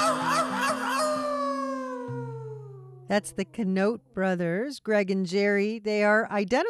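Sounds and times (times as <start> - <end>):
voice imitating a coyote howling at the moon: 0.0 - 3.1
speech: 3.1 - 6.6.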